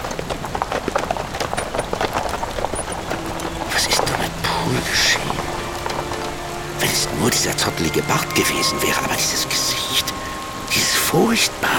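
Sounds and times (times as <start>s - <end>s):
carriage rumbling as it pulls away: 0.0s - 8.1s
horses' hooves clip-clopping on a hard road: 0.0s - 8.7s
speech: 7.0s - 10.1s, 11.1s - 11.7s.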